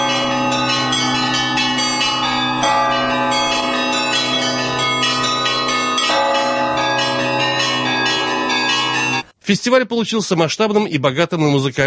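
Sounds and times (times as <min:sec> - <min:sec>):
church bells ringing in a full peal: 0:00.0 - 0:09.3
speech: 0:09.5 - 0:11.8.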